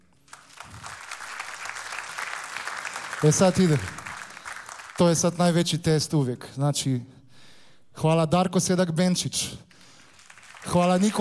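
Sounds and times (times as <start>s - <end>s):
audience applause: 0.3s - 5.6s, 9.8s - 11.1s
speech: 3.2s - 4.0s, 5.0s - 7.2s, 8.0s - 9.7s, 10.6s - 11.1s.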